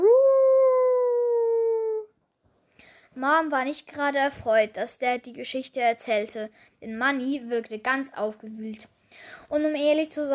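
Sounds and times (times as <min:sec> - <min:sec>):
beagle howling in a forest at night: 0:00.0 - 0:02.1
speech: 0:03.2 - 0:10.3.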